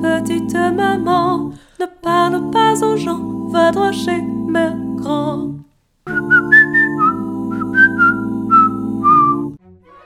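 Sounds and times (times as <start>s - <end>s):
speech: 0.4s - 5.5s
person whistling a short bright melody: 6.1s - 9.6s.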